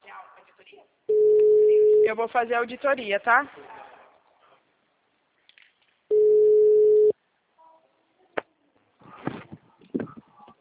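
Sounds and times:
speech: 0:02.1 - 0:03.7
telephone dial tone before a call: 0:06.1 - 0:07.1.

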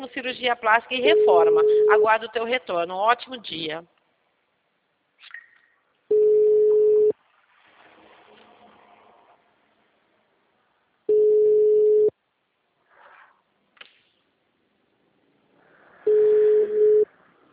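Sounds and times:
speech: 0:00.1 - 0:04.0
telephone busy signal: 0:01.0 - 0:02.1, 0:06.1 - 0:07.1, 0:11.1 - 0:12.1, 0:16.1 - 0:17.1.

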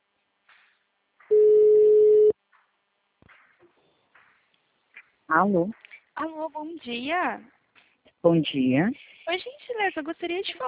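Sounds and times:
ringback tone on an outgoing telephone call: 0:01.3 - 0:02.3
speech: 0:05.3 - 0:07.6, 0:08.2 - 0:10.6.

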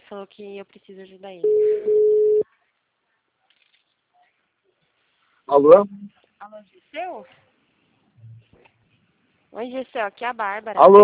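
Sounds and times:
speech: 0:00.1 - 0:02.3, 0:05.5 - 0:07.5, 0:09.5 - 0:11.0
phone ringback tone while placing a call: 0:01.4 - 0:02.4.

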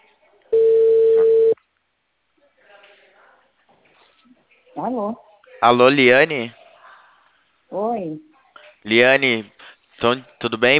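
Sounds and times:
telephone ringback tone as a call is placed: 0:00.6 - 0:01.6
speech: 0:04.8 - 0:06.6, 0:07.7 - 0:10.7.

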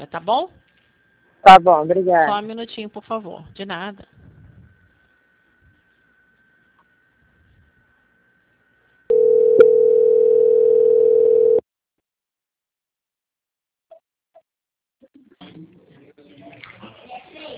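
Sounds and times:
speech: 0:00.0 - 0:00.6, 0:01.4 - 0:04.1
steady telephone line tone while a call is transferred: 0:09.1 - 0:11.6.

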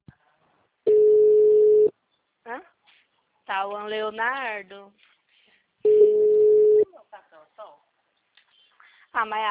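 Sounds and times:
telephone line ringback tone while a call is placed: 0:00.9 - 0:01.9, 0:05.9 - 0:06.8
speech: 0:03.6 - 0:05.2, 0:09.2 - 0:09.5.

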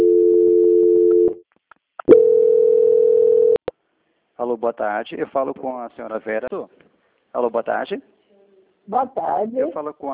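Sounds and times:
steady mid-pitched telephone tone during a call transfer: 0:00.0 - 0:01.4, 0:02.1 - 0:03.6
speech: 0:04.4 - 0:08.1, 0:08.9 - 0:10.1.

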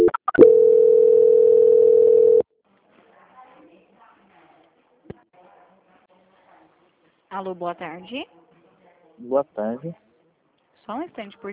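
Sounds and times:
telephone call transfer tone: 0:00.0 - 0:02.4
speech: 0:07.4 - 0:08.4, 0:09.2 - 0:10.0, 0:10.9 - 0:11.5.

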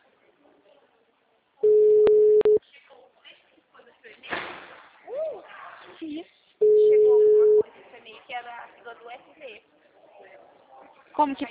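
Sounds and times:
telephone tone of a call being placed: 0:01.6 - 0:02.6, 0:06.6 - 0:07.6
speech: 0:11.2 - 0:11.5.

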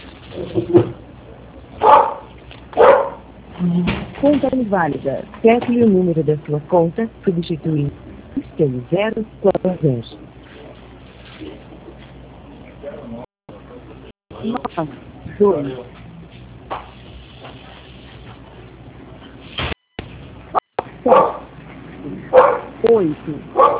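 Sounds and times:
dog barking over a phone line: 0:01.8 - 0:03.3, 0:21.0 - 0:21.5, 0:22.3 - 0:22.8, 0:23.6 - 0:23.7
speech: 0:03.6 - 0:08.0, 0:08.6 - 0:10.2, 0:14.4 - 0:16.0, 0:21.0 - 0:21.4, 0:23.0 - 0:23.6.

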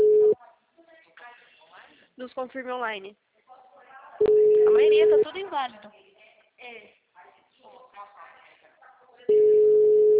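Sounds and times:
steady loud telephone tone while waiting for answer: 0:00.0 - 0:00.4, 0:04.2 - 0:05.2, 0:09.3 - 0:10.1
speech: 0:02.2 - 0:03.3, 0:04.2 - 0:06.0, 0:06.6 - 0:07.0.

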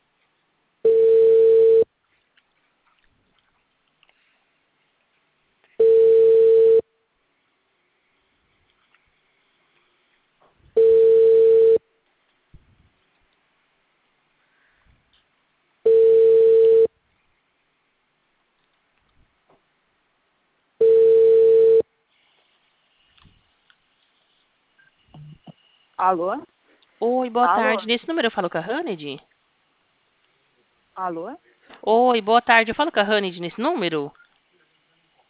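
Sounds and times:
telephone ringback tone while calling someone: 0:00.8 - 0:01.9, 0:05.8 - 0:06.9, 0:10.8 - 0:11.8, 0:15.9 - 0:16.9, 0:20.8 - 0:21.8
speech: 0:26.0 - 0:29.3, 0:31.0 - 0:34.2.

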